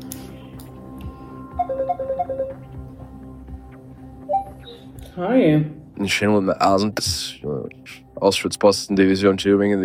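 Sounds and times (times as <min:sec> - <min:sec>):
mobile phone ringing with a bright electronic melody: 0:01.5 - 0:02.7
speech: 0:01.8 - 0:03.0, 0:05.2 - 0:09.8.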